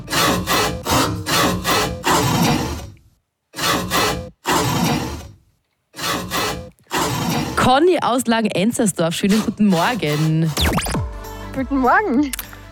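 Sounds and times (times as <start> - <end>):
handsaw sawing into a trash bin: 0.0 - 5.4, 6.0 - 7.9, 9.2 - 10.7
speech: 7.7 - 10.9, 11.6 - 12.4.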